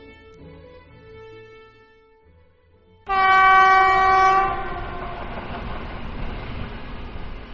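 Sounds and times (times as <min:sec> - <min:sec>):
departing train horn: 0:03.1 - 0:05.6
train rolling along: 0:03.1 - 0:07.5.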